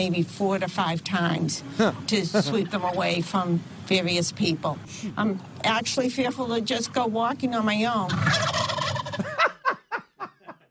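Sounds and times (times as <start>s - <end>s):
speech: 0.0s - 8.6s
wild turkey gobbling: 8.1s - 9.7s
laughter: 9.2s - 10.6s.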